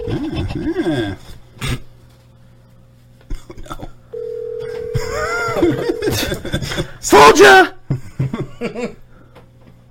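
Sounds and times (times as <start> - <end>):
speech: 0.1 - 1.4, 7.0 - 7.8, 8.7 - 9.0
laughter: 2.3 - 9.8
phone line ringing tone: 4.1 - 6.3.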